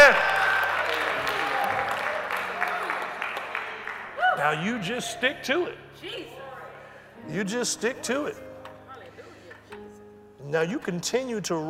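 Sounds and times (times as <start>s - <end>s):
church audience clapping in praise: 0.0s - 5.0s
speech: 4.5s - 6.4s, 7.2s - 8.5s, 10.4s - 11.6s.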